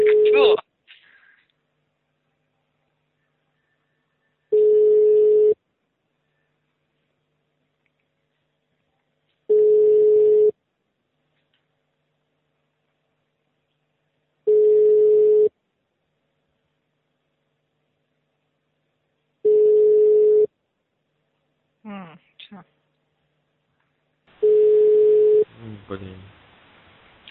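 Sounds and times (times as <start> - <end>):
telephone ringback tones while a call is redialed: 0.0 - 0.6, 4.5 - 5.6, 9.5 - 10.5, 14.5 - 15.5, 19.4 - 20.5, 24.4 - 25.5.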